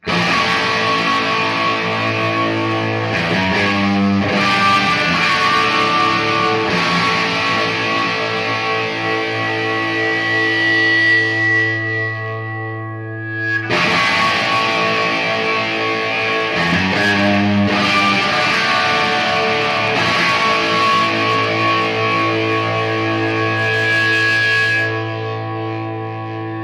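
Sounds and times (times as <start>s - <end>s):
Les Paul R8 electric guitar through Marshall Superlead amplifier: 0.0s - 26.6s.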